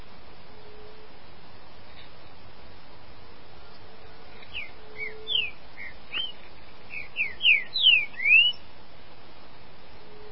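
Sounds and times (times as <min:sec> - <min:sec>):
green-winged saltator song: 0:04.4 - 0:08.7.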